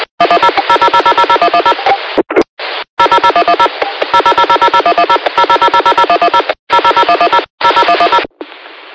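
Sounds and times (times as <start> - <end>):
mobile phone dialing tones over a radio channel: 0.2 - 2.1, 3.0 - 8.3.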